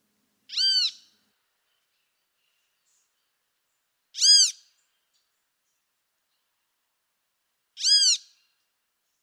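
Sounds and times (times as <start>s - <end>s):
great kiskadee calling: 0.5s - 1.1s.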